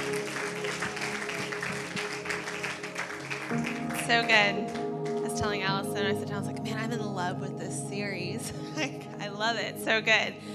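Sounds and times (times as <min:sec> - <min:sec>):
audience applause: 0:00.0 - 0:05.6
speech: 0:03.6 - 0:04.8, 0:05.4 - 0:10.5.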